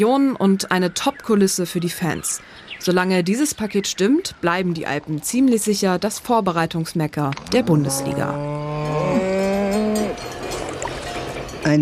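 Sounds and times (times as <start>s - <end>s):
speech: 0.0s - 9.3s, 11.6s - 11.8s
cow mooing in an Alpine setting: 7.4s - 10.4s.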